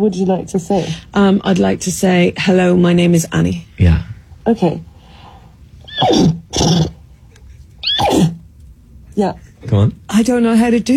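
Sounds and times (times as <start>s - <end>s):
speech: 0.0s - 4.9s, 6.0s - 6.9s, 9.2s - 10.9s
person imitating a horse neighing: 5.9s - 7.0s, 7.8s - 8.4s.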